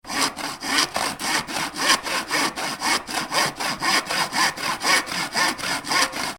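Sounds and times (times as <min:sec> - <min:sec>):
hand saw sawing wood: 0:00.0 - 0:06.3.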